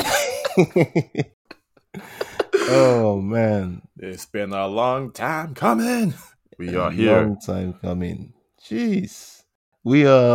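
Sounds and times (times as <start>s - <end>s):
speech: 0.6s - 10.3s
person coughing with throaty hacking: 2.0s - 3.0s.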